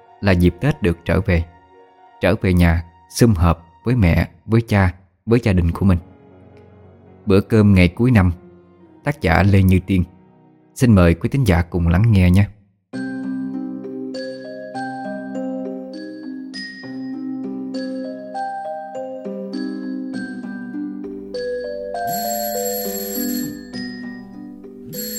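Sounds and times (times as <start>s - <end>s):
speech: 0.2s - 1.5s, 2.2s - 6.1s, 7.2s - 8.4s, 9.0s - 10.1s, 10.8s - 13.0s
phone alarm ringing with a melodic ringtone by a bed: 21.3s - 25.1s.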